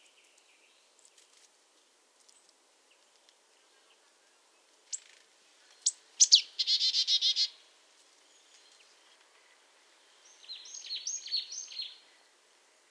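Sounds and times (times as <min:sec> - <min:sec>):
Marsh tit Poecile palustris calls: 0:05.8 - 0:07.5.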